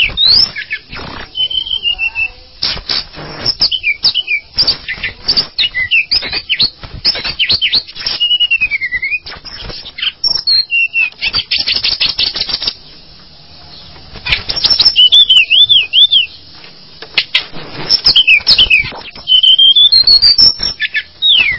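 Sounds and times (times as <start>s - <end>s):
Java sparrow clicking and whistling song: 0.0s - 13.0s, 13.6s - 21.5s.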